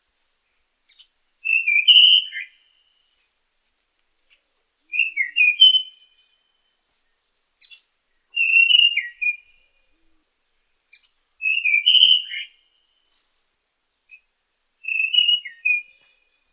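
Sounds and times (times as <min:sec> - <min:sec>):
Tanahjampea Blue Flycatcher singing whistled phrases: 0:01.2 - 0:02.6, 0:04.6 - 0:06.2, 0:07.6 - 0:09.7, 0:11.2 - 0:12.8, 0:14.1 - 0:16.1.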